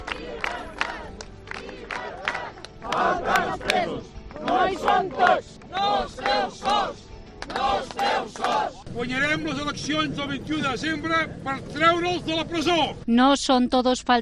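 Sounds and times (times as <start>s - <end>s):
small street demonstration crowd chanting slogans: 0.0s - 8.9s
speech: 9.0s - 14.1s.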